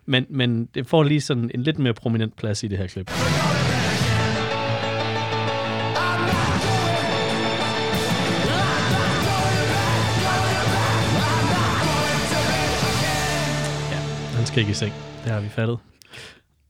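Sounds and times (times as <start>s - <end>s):
speech: 0.1s - 3.8s, 14.6s - 16.4s
steady low bass line: 3.1s - 15.6s
isolated piano part from a rock song playing dense sustained chords: 4.2s - 15.6s.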